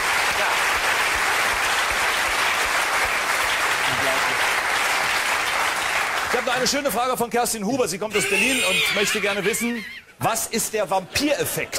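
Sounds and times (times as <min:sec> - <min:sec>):
audience applause: 0:00.0 - 0:06.8
speech: 0:06.5 - 0:11.7.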